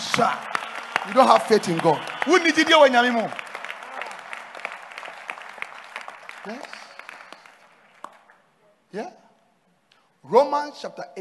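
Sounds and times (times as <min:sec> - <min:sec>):
crowd clapping: 0:00.0 - 0:08.4
speech: 0:00.2 - 0:03.4, 0:06.4 - 0:06.7, 0:08.9 - 0:09.2, 0:10.2 - 0:11.1.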